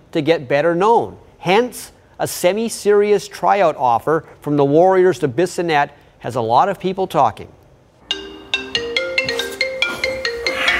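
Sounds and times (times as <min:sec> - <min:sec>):
speech: 0:00.1 - 0:07.6
phone ringtone of electronic chime notes: 0:08.1 - 0:10.7.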